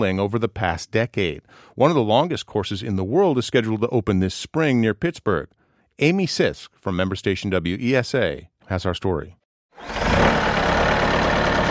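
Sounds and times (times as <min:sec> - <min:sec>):
speech: 0:00.0 - 0:10.4
small tractor with front shovel scooping sandstone chunks in western Pennsylvania: 0:09.8 - 0:11.7.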